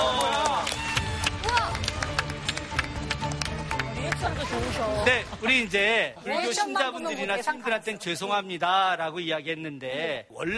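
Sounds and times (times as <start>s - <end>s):
studio audience applause: 0.0s - 4.6s
speech: 5.0s - 10.5s.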